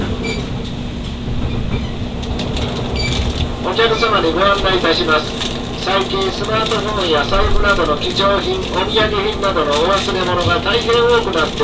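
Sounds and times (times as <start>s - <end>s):
limited express train rumbling into a station platform: 0.0s - 11.6s
faint high metallic squeals: 1.4s - 2.2s
speech: 3.8s - 11.6s.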